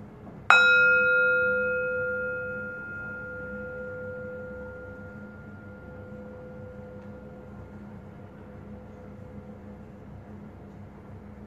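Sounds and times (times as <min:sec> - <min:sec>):
bell struck and ringing: 0:00.5 - 0:07.3.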